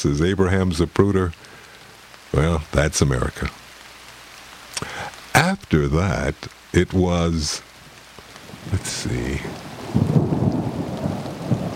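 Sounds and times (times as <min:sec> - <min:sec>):
speech: 0:00.0 - 0:01.5, 0:02.3 - 0:03.6, 0:05.7 - 0:07.7, 0:08.6 - 0:10.2
steady rain: 0:00.0 - 0:11.7
rolling thunder: 0:08.5 - 0:11.7.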